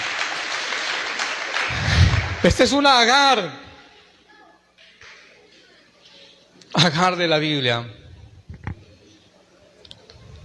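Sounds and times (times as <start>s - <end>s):
church audience applauding: 0.0s - 2.9s
speech: 2.4s - 3.6s, 6.8s - 8.0s.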